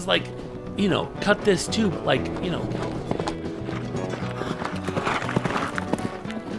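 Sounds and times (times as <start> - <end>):
speech: 0.0 - 3.0
horse hooves clip-clopping: 1.2 - 6.5.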